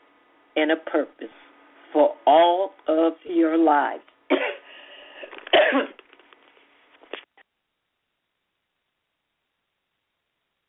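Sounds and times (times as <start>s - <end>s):
speech: 0.6s - 4.1s, 5.7s - 5.9s
harsh coughing fit: 4.3s - 6.0s.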